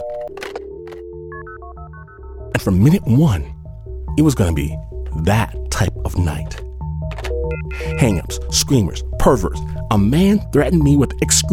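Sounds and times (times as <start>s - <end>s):
telephone keypad tones as phones are dialed: 0.0s - 2.2s, 7.1s - 8.3s
speech: 2.6s - 3.6s, 4.2s - 6.6s, 7.8s - 11.5s.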